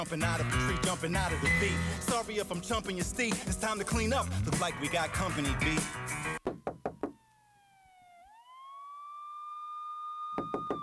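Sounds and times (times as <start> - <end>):
speech: 0.0 - 6.4
loud sharp knocking on a door: 6.4 - 7.2, 10.4 - 10.8
siren-like wailing tone: 6.9 - 10.8.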